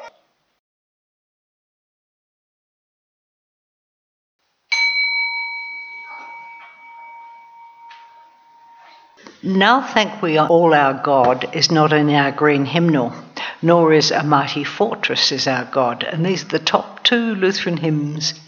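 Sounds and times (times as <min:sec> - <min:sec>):
single bell struck to close a silence: 0:04.7 - 0:09.3
speech: 0:09.4 - 0:18.4.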